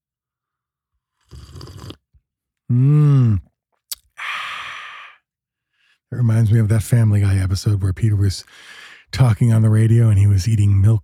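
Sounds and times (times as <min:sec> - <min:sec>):
airy slurp of hot tea with honey from a cup: 0:01.2 - 0:02.1
speech: 0:02.7 - 0:03.1, 0:06.2 - 0:11.0
drawn-out voiced sigh: 0:02.7 - 0:05.2
long breathy exhale: 0:04.2 - 0:05.2, 0:08.5 - 0:09.1.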